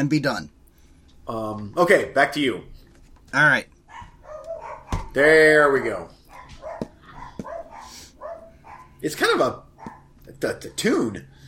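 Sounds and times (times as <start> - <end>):
speech: 0.0 - 0.6, 1.3 - 2.7, 3.3 - 3.7, 5.2 - 6.2, 9.0 - 9.7, 10.4 - 11.3
old dog barking on the back of a couch: 3.9 - 9.0, 9.7 - 10.2.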